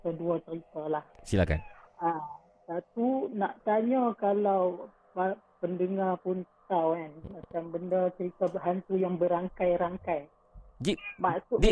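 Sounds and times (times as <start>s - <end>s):
speech: 0.0s - 11.6s
cat meowing: 10.9s - 11.4s.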